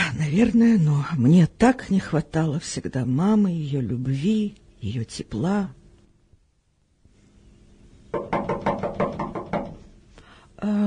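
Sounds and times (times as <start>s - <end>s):
speech: 0.3s - 5.8s
firm knocks on a wooden door: 8.1s - 9.9s.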